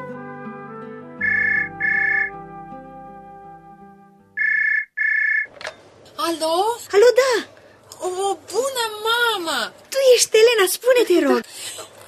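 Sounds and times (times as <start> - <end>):
soft music: 0.0 - 4.4
telephone ringing: 1.2 - 2.3, 4.4 - 5.5
speech: 6.3 - 11.8.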